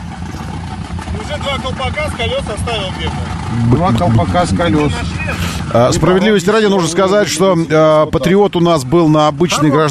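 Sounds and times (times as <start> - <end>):
low SUV engine rumble: 0.0 - 9.7
speech: 1.2 - 9.8
SUV exhaust gurgling and bubbling while submerged: 3.2 - 6.8
indistinct voices: 3.4 - 6.2.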